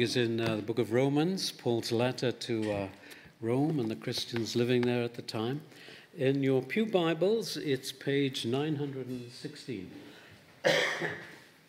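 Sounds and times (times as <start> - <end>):
speech: 0.0 - 11.3
person coughing while reading scripture: 10.6 - 11.4.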